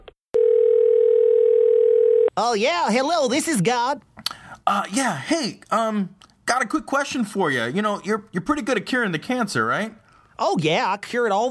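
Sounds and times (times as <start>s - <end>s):
telephone keypad dialing tones: 0.4s - 2.3s
speech: 2.4s - 4.1s, 4.7s - 11.4s.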